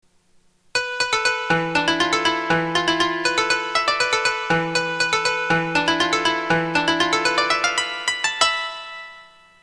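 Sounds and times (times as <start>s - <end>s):
koto playing: 0.8s - 9.6s.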